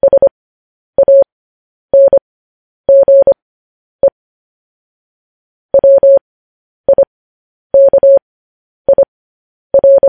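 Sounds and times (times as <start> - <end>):
Morse code beeps in a mid-pitched tone: 0.0 - 0.3, 1.0 - 1.2, 2.0 - 2.2, 2.9 - 3.4, 5.8 - 6.2, 7.8 - 8.2, 8.9 - 9.1, 9.8 - 10.0.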